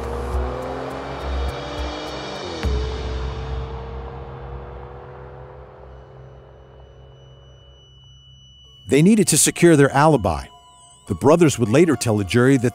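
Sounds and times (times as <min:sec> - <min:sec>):
car engine roaring and revving through the gears at high speed: 0:00.0 - 0:10.1
speech: 0:08.9 - 0:12.7.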